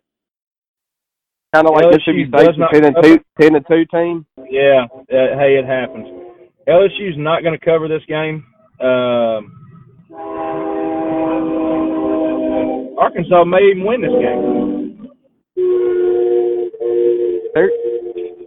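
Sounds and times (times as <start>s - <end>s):
speech: 1.5s - 10.3s, 13.0s - 14.7s, 17.6s - 17.8s
train horn sounding long loud blasts before a crossing: 4.4s - 6.8s, 10.1s - 15.0s, 15.6s - 18.4s
rumble of the passing train: 4.4s - 15.0s.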